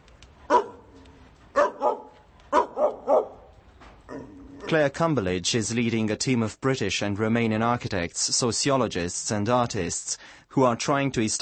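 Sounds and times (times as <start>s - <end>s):
faint hissy outdoor background: 0.0s - 11.3s
stray dogs barking in a derelict wasteland: 0.5s - 3.5s
speech: 4.7s - 11.3s.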